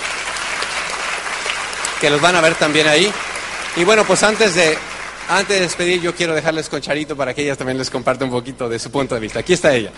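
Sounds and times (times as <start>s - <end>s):
audience applause: 0.0s - 7.1s, 9.6s - 9.9s
speech: 2.0s - 9.9s.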